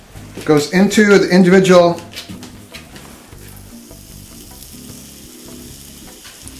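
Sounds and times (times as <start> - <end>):
speech: 0.4 - 2.3
batter sizzling in a hot cast iron pan: 2.6 - 6.5.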